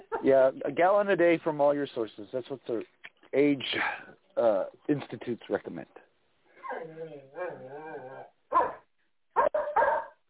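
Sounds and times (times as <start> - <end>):
speech: 0.2 - 6.1, 6.8 - 8.6
dog whining: 6.6 - 8.8
dogs barking: 8.5 - 10.2.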